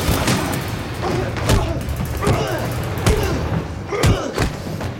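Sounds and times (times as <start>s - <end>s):
heavy thuds and blows of a fistfight: 0.2s - 4.9s
strained grunts: 1.0s - 4.9s.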